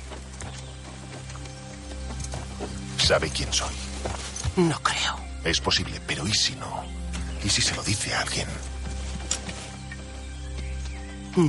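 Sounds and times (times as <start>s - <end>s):
horse walking, led and loaded with bundles of firewood: 0.0s - 4.9s, 7.1s - 11.2s
speech: 3.1s - 3.9s, 4.6s - 8.7s.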